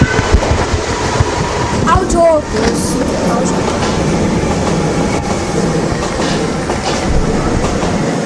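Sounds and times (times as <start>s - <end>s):
train passing on rails: 0.0s - 8.2s
speech: 2.1s - 3.8s.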